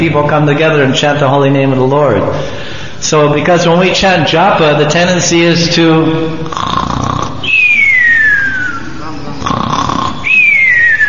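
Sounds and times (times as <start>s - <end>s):
speech: 0.0s - 7.6s
person imitating snoring in a cartoonish way: 6.4s - 8.0s, 8.6s - 10.8s
long descending whistled exhale: 7.4s - 8.9s, 10.2s - 11.0s.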